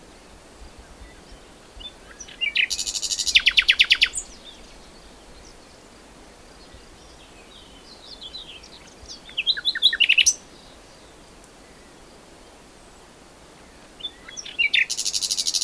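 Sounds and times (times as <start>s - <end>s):
common nightingale Luscinia megarhynchos singing: 0.7s - 15.6s.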